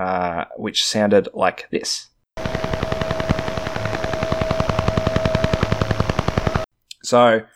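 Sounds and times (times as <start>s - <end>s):
speech: 0.0s - 2.5s, 7.1s - 7.5s
harsh buzzing radar radio interference: 2.4s - 6.7s
rapid evenly spaced pulsed tapping: 2.4s - 6.7s
steady whine: 2.4s - 6.7s.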